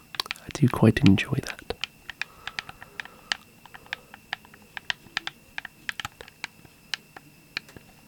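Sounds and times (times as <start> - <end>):
joystick making plastic snapping clicks: 0.0 - 8.0
speech: 0.6 - 1.6.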